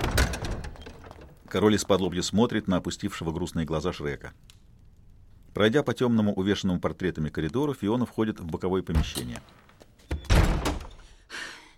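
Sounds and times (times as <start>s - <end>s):
door with a hanging sign slamming shut: 0.0s - 1.4s, 10.1s - 11.1s
speech: 1.5s - 4.6s, 5.6s - 9.7s.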